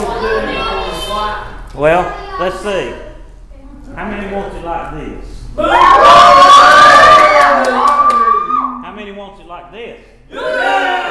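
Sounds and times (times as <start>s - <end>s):
speech: 1.2s - 3.1s, 3.9s - 8.1s
crowd yelling and cheering as a vote: 5.6s - 8.8s, 10.3s - 11.0s.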